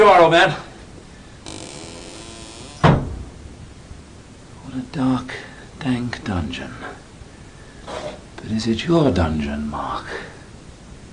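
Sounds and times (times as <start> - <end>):
speech: 0.0 - 0.7, 4.8 - 7.0, 7.9 - 10.4
door swinging shut with a solid thud: 1.4 - 3.4.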